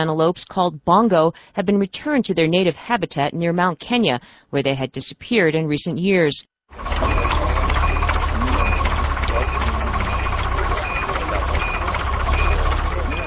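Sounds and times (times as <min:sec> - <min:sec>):
speech: 0:00.0 - 0:07.0
faint beeps: 0:06.8 - 0:13.2
heavy diesel engine of a large truck rumbling: 0:06.8 - 0:13.2.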